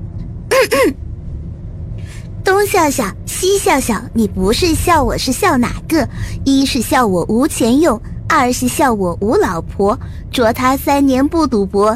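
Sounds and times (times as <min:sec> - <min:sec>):
person clearing throat: 0:00.5 - 0:01.0
speech: 0:00.6 - 0:01.0, 0:02.5 - 0:11.9.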